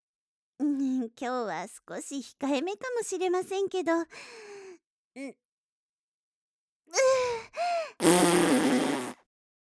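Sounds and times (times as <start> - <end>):
speech: 1.0 - 4.5, 5.2 - 5.4, 6.9 - 9.0
fart with squeaky and sputtering blasts: 8.0 - 9.3.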